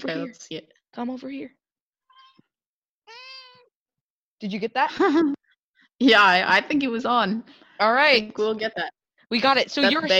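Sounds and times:
speech: 0.0s - 1.6s, 4.4s - 5.4s, 6.0s - 10.1s
domestic cat meowing: 2.1s - 2.5s, 3.1s - 3.7s.

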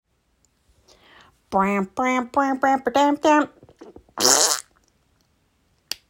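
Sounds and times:
speech: 1.5s - 3.6s
buzzy fart noise: 3.8s - 4.7s.

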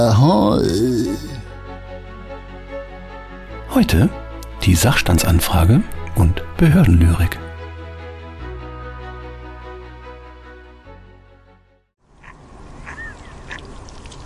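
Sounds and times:
speech: 0.0s - 1.3s, 3.7s - 7.4s
sustained droning music: 0.0s - 11.8s
ducks quacking outdoors: 12.2s - 13.7s.

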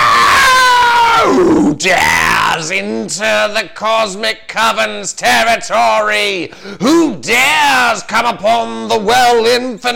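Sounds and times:
voice imitating eerie screeching of floating figures: 0.0s - 2.6s
speech: 1.8s - 9.9s.

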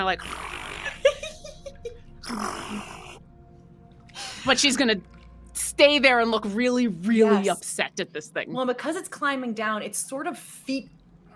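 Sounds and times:
speech: 0.0s - 0.6s, 2.3s - 2.9s, 4.4s - 5.1s, 5.8s - 11.0s
laughter: 0.8s - 2.0s
person imitating a low raspy growl like a soft purr: 2.2s - 3.2s.

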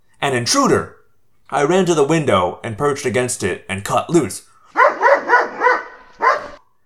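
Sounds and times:
speech: 0.3s - 4.5s
dog barking loudly: 4.7s - 6.6s.

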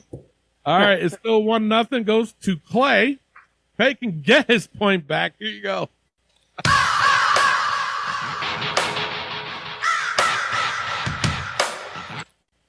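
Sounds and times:
speech: 0.7s - 3.2s, 3.8s - 6.0s, 6.6s - 6.9s
raven cawing: 6.7s - 12.2s.

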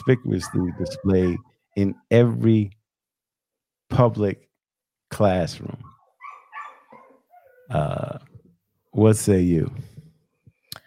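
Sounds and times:
dog yipping and whining: 0.0s - 1.6s, 5.8s - 7.7s
speech: 0.0s - 2.8s, 3.9s - 4.5s, 5.1s - 5.9s, 7.7s - 8.3s, 9.0s - 9.9s.

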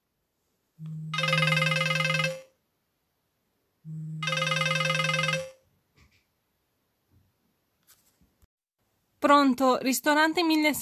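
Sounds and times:
speech: 0.8s - 1.2s, 9.2s - 10.8s
telephone ringing: 0.8s - 2.6s, 3.9s - 5.7s.

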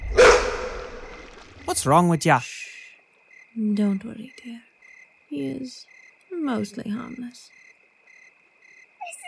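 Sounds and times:
wolf giving a dog-like bark: 0.1s - 1.2s
speech: 1.7s - 2.6s, 3.6s - 4.7s, 5.3s - 7.6s.

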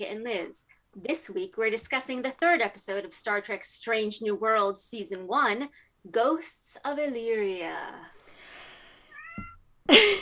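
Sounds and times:
speech: 0.0s - 8.2s, 9.4s - 10.1s
cat meowing: 9.1s - 9.6s.

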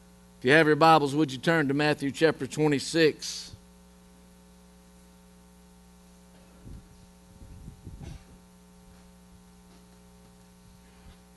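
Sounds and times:
electrical mains hum through a sound system: 0.0s - 11.3s
speech: 0.4s - 3.6s.

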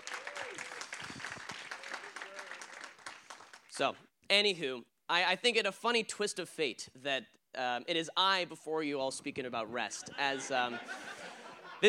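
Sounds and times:
faint voices and whoops: 0.0s - 1.1s
crowd applauding for the seniors: 0.0s - 3.7s
speech: 3.8s - 11.2s
laughter: 9.9s - 11.8s.

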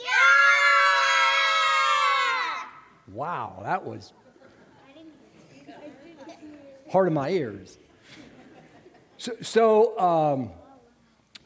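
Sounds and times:
group of children yelling together: 0.0s - 2.9s
speech: 3.2s - 4.3s, 6.9s - 7.8s, 9.2s - 10.6s
laughter: 4.2s - 4.8s, 8.0s - 9.2s.

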